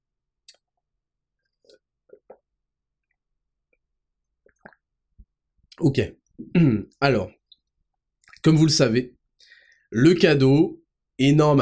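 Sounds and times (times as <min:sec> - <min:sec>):
person sipping water with gulps and mouth clicks: 0:01.5 - 0:02.5, 0:04.4 - 0:04.9
speech: 0:05.8 - 0:07.4, 0:08.4 - 0:09.2, 0:09.9 - 0:11.6.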